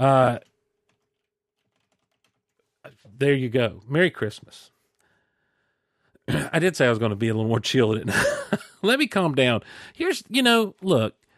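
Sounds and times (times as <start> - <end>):
speech: 0.0 - 0.5, 3.1 - 4.7, 6.3 - 11.2
typing on a computer keyboard: 0.8 - 2.7
laughter: 8.0 - 8.8.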